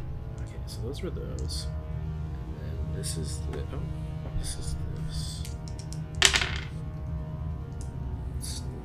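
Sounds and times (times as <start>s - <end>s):
low hum: 0.0s - 8.8s
speech: 0.7s - 1.8s, 3.0s - 5.4s
new dice clattering across a tabletop during a game roll: 5.4s - 6.8s.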